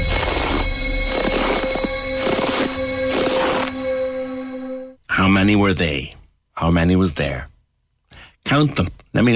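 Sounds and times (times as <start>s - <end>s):
footsteps crunching in snow at a steady walking pace: 0.1s - 4.0s
speech: 5.5s - 7.5s, 8.4s - 9.3s.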